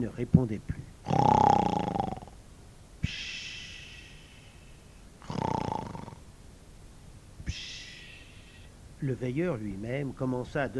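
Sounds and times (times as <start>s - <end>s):
speech: 0.0s - 1.5s, 9.0s - 10.7s
man snoring while lying on grass among ruins: 1.0s - 2.4s, 5.2s - 6.2s.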